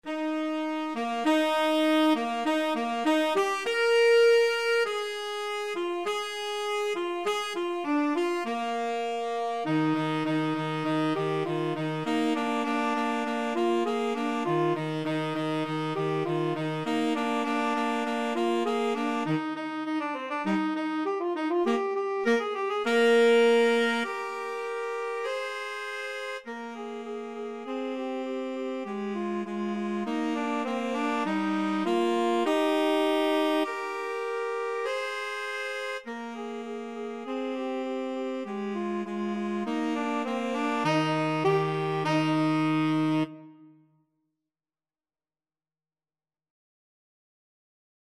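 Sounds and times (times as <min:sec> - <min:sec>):
tenor sax duet: 0:00.0 - 0:43.8.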